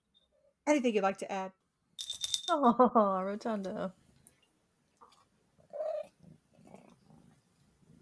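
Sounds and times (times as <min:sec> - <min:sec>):
speech: 0:00.7 - 0:04.0
cat purring: 0:05.0 - 0:08.0.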